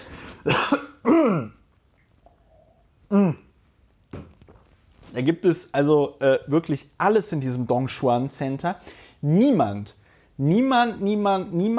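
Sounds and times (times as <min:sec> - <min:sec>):
person with a frog in the throat clearing throat: 0:00.4 - 0:01.6, 0:03.1 - 0:03.5
speech: 0:05.2 - 0:11.7.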